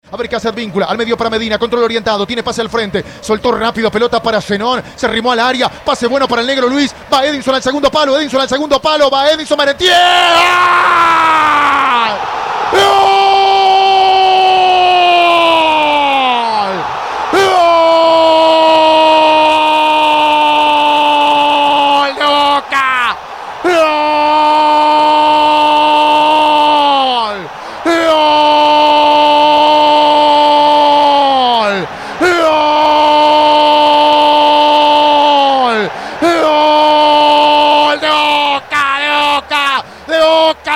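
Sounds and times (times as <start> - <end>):
speech: 0.1 - 13.2
man screaming in goal celebration: 9.8 - 40.7
quick breaths: 27.5 - 27.9, 31.9 - 32.2, 35.9 - 36.2, 39.8 - 40.1.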